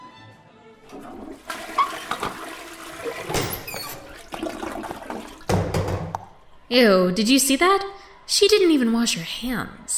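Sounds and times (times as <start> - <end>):
toilet flushing in a bathroom: 0.8 - 6.4
speech: 0.9 - 2.3, 6.7 - 9.9.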